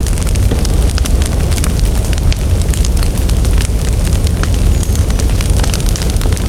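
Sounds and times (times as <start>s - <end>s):
battle torch burning: 0.0s - 6.4s.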